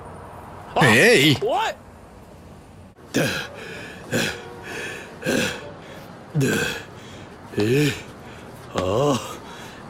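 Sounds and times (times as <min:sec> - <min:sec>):
speech: 0:00.8 - 0:01.8, 0:03.2 - 0:03.5, 0:06.4 - 0:06.8, 0:07.6 - 0:08.0
heavy ragged panting: 0:03.1 - 0:09.8.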